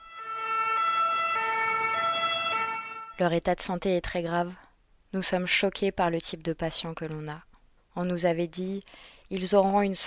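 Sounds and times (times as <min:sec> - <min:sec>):
French SAMU emergency medical service ambulance siren wailing: 0:00.0 - 0:03.2
speech: 0:03.2 - 0:10.0.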